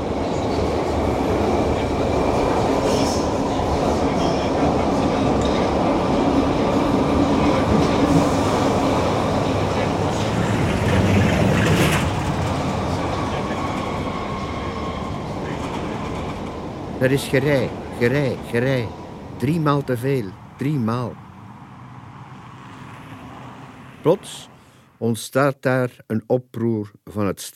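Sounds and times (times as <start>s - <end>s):
tram rolling along rails: 0.0s - 24.1s
tram wheel squeals: 2.0s - 5.7s, 7.4s - 16.7s
speech: 17.0s - 21.2s, 24.0s - 27.5s.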